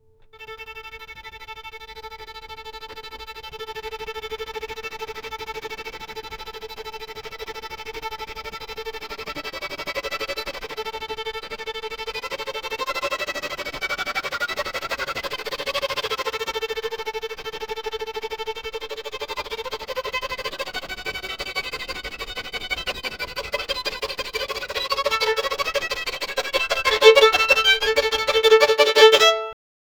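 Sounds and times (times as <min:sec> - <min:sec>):
high fast violin: 0:00.4 - 0:29.6.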